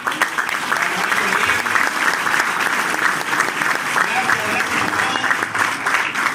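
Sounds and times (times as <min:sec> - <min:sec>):
large audience applause: 0:00.0 - 0:06.3.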